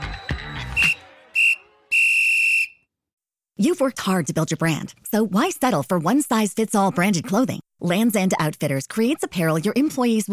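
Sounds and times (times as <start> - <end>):
referee-style whistle blasts: 0.0 - 2.9
speech: 3.6 - 10.3.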